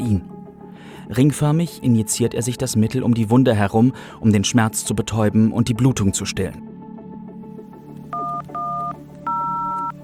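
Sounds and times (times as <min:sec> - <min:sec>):
speech: 0:01.1 - 0:06.8
telephone keypad tones dialing the police emergency number: 0:08.1 - 0:10.0.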